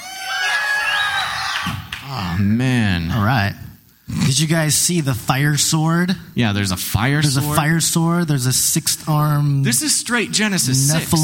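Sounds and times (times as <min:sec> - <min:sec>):
audience of children screaming and shouting: 0:00.0 - 0:01.9
speech: 0:01.7 - 0:11.2.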